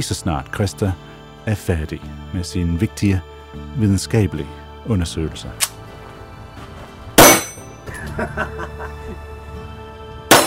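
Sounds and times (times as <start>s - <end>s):
speech: 0.0s - 5.8s, 8.2s - 8.6s
shots hitting steel shooting target: 7.2s - 7.7s
laughter: 7.8s - 9.4s.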